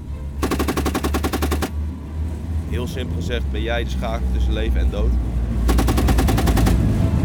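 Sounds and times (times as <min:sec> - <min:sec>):
7.62 mm machine gun firing a burst: 0:00.4 - 0:01.8, 0:05.7 - 0:07.1
speech: 0:02.7 - 0:05.8.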